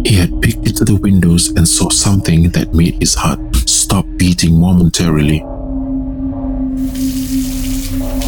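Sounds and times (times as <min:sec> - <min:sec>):
speech: 0:00.2 - 0:05.5
water running from a tap into a sink on a bench: 0:06.8 - 0:08.2.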